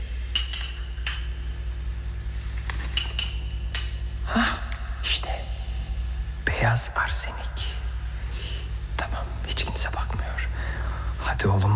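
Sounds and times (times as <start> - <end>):
steady low hum: 0.0 - 11.7
glass bottle clinking as it is lifted from a shelf in a poison cabinet: 0.3 - 1.6, 2.8 - 4.4
speech: 6.6 - 7.5, 9.6 - 10.5, 11.2 - 11.7.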